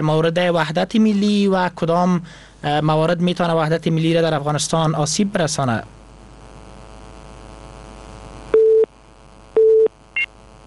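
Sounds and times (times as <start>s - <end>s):
speech: 0.0s - 6.0s
telephone busy tone after a caller's line was cut off: 8.6s - 8.9s, 9.6s - 10.3s.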